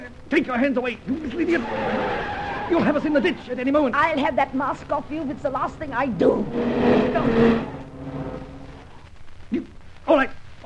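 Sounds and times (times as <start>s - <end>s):
speech: 0.3s - 7.8s
car engine humming while driving: 1.1s - 9.0s.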